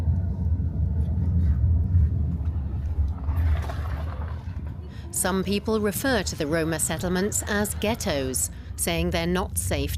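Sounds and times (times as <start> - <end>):
tire or wind noise: 0.0 - 6.2
low engine drone inside a moving police car: 0.0 - 9.9
road rumble inside a moving police car: 0.0 - 9.9
speech: 5.2 - 9.9.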